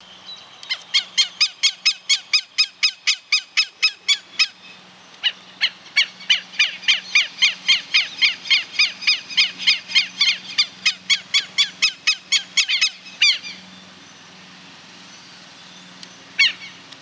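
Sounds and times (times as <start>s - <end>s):
Vanellus chilensis alarm call: 0.7s - 13.7s, 16.4s - 16.8s.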